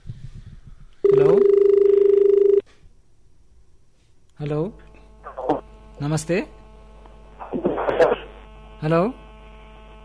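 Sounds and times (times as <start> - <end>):
telephone ringing tone announcing an incoming call: 1.0 - 2.6
speech: 6.0 - 6.6, 8.8 - 9.2.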